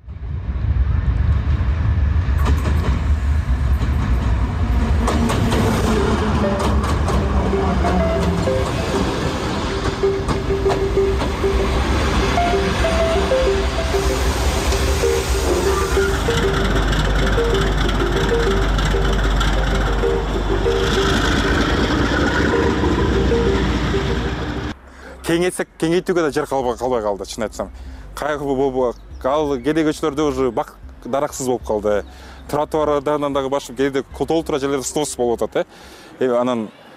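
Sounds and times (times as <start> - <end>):
commuter train passing: 0.0 - 25.3
tonal whine of a passing commuter train: 4.8 - 24.8
speech: 25.5 - 36.8.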